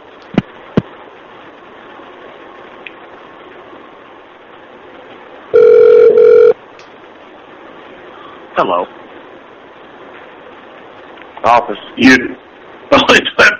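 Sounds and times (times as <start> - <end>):
buzzing office telephone ring: 5.5 - 6.6
quiet office phone line hiss: 5.5 - 6.6
speech: 8.6 - 9.0, 11.4 - 12.4.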